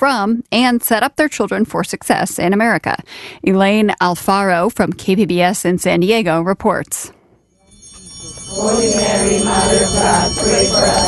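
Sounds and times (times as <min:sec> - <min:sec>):
speech: 0:00.0 - 0:07.2, 0:08.2 - 0:11.0
church bells ringing: 0:07.7 - 0:11.0.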